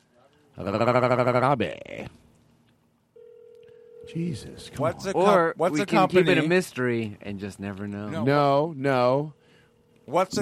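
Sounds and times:
faint low hum: 0.0s - 10.4s
speech: 0.6s - 2.2s, 4.1s - 9.4s, 10.1s - 10.4s
phone ringing on an outgoing call: 3.2s - 4.8s.

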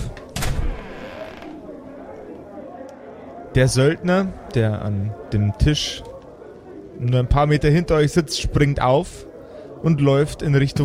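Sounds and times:
door bursting open with a crash and a creak: 0.3s - 1.6s
speech: 3.6s - 6.1s, 7.0s - 10.8s.

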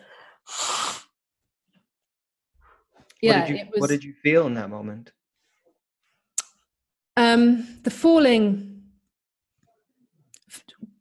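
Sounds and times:
forceful nose blowing: 0.4s - 1.2s
speech: 3.2s - 5.2s, 7.2s - 8.7s.

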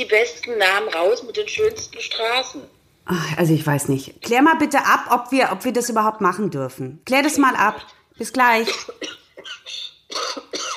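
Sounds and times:
speech: 0.0s - 10.7s
person coughing harshly: 8.6s - 10.7s.

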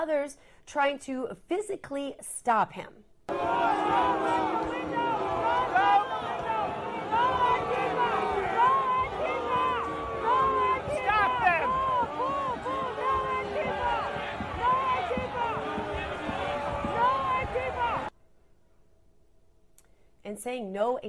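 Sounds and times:
speech: 0.0s - 6.0s, 20.3s - 21.0s
large crowd shouting and jeering: 3.3s - 18.1s
sharp yells: 3.3s - 18.1s.

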